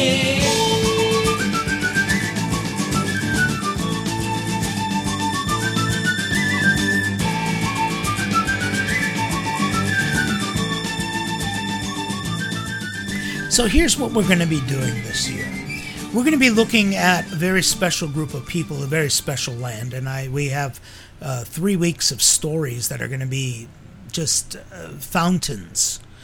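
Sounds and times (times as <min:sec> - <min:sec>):
loud instrumental music with a driving beat: 0:00.0 - 0:17.4
bright whistled melody: 0:00.0 - 0:19.4
speech: 0:13.6 - 0:26.0.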